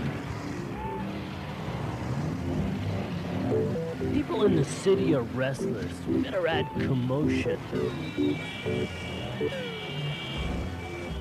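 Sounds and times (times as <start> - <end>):
city traffic with engine rumble and road noise: 0.0 - 11.1
speech: 4.2 - 9.7.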